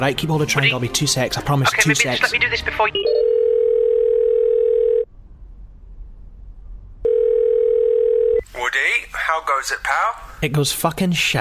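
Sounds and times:
speech: 0.0 - 3.4, 9.4 - 11.3
steady loud electronic telephone tone: 2.9 - 5.1, 7.0 - 8.4.

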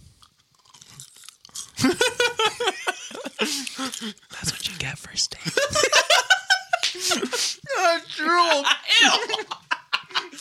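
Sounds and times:
chewing french fries: 0.2 - 1.8
speech: 1.8 - 2.2, 3.4 - 4.2, 4.8 - 6.0
laughter: 1.8 - 4.1, 5.5 - 10.3.

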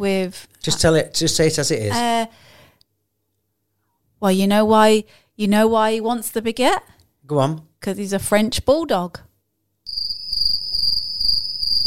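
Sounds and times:
speech: 0.0 - 2.5, 4.2 - 9.3
crickets chirping: 9.9 - 11.8.

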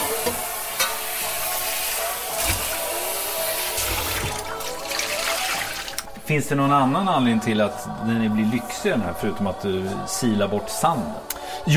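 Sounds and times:
water splashing and swirling as a pan is rinsed after cooking clams: 0.1 - 6.1
speech: 6.3 - 11.7.

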